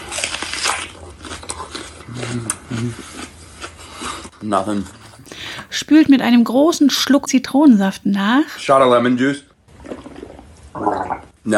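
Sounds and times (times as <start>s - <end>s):
crunchy bites into a huge raw onion: 0.0s - 2.8s
low chewing rumble: 0.0s - 5.2s, 9.8s - 11.3s
speech: 2.3s - 3.2s, 4.4s - 5.0s, 5.8s - 9.5s.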